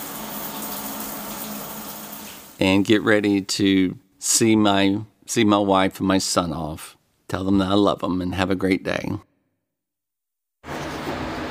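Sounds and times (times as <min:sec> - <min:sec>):
shower water spray at home: 0:00.0 - 0:02.6
speech: 0:02.6 - 0:09.3.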